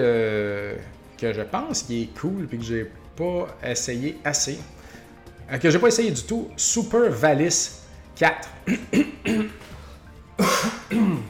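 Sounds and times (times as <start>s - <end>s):
speech: 1.2s - 4.8s, 5.5s - 9.6s
person coughing and clearing throat: 8.6s - 11.2s.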